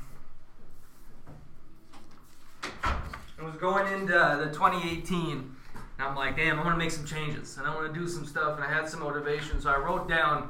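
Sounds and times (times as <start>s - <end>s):
door pushed closed with soft rattles and shuffles: 2.6s - 3.2s
speech: 3.4s - 10.4s.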